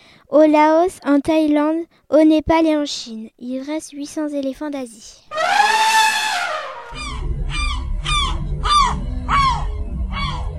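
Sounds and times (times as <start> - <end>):
speech: 0.3 - 5.9
gulls of the family Laridae calling: 5.3 - 10.5.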